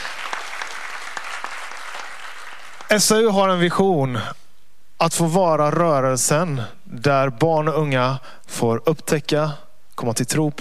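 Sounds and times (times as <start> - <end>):
audience applause: 0.0 - 3.2
speech: 2.9 - 4.4, 5.0 - 10.6.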